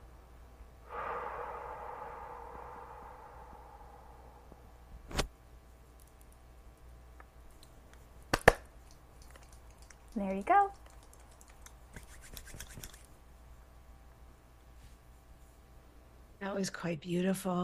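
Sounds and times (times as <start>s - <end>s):
deep breath drawn in during a guided breathing exercise: 0.9s - 4.8s
faint clicks: 8.8s - 11.8s
speech: 10.2s - 10.8s, 16.5s - 17.6s.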